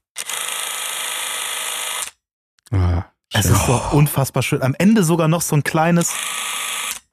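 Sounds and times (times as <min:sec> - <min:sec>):
16mm film camera clockwork mechanism whirring: 0:00.2 - 0:02.2, 0:06.0 - 0:07.1
speech: 0:02.7 - 0:06.4.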